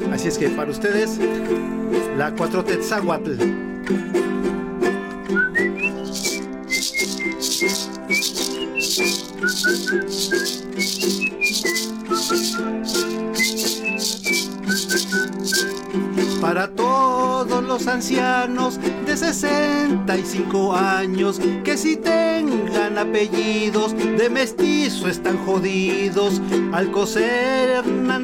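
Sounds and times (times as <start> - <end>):
speech: 0.1 - 4.6, 17.7 - 28.2
wavering whistled melody: 5.2 - 16.6
rhythmic maraca shaking: 5.5 - 16.7.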